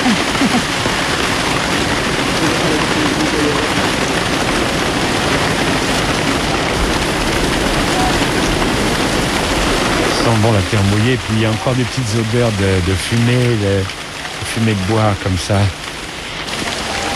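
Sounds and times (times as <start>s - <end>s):
heavy tropical rain with large drops pouring down: 0.0s - 17.1s
speech: 10.4s - 14.0s, 14.6s - 15.8s.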